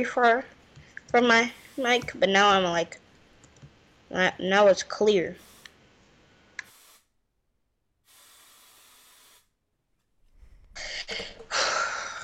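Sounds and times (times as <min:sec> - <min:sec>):
speech: 0:00.0 - 0:03.0, 0:04.1 - 0:05.5
aerosol body spray hissing: 0:01.3 - 0:02.2, 0:05.4 - 0:05.8, 0:06.6 - 0:07.2, 0:08.1 - 0:09.5.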